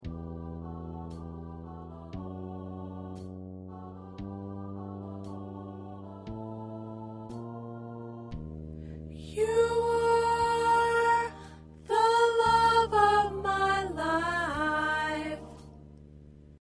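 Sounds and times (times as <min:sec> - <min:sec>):
soprano singing: 0:09.2 - 0:15.8.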